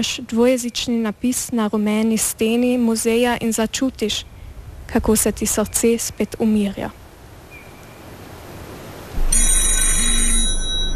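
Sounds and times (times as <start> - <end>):
speech: 0.0 - 4.3, 4.9 - 7.0
telephone ringing with a bright buzzing electronic tone: 9.2 - 10.9.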